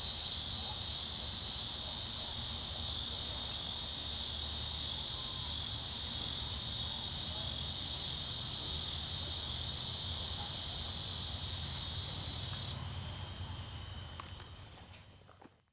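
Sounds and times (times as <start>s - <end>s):
cicada song: 0.0s - 15.0s.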